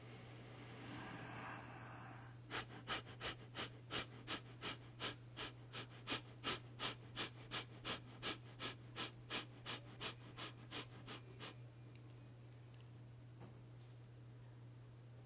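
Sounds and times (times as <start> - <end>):
low constant hum: 0.0 - 15.2
rapid forceful abdominal breathing through the nose with head tilted down: 0.7 - 11.6.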